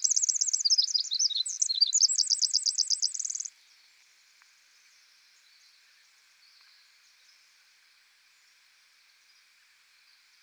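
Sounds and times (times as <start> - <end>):
Pacific wren singing a cascade of very high notes in forest: 0.0 - 3.5.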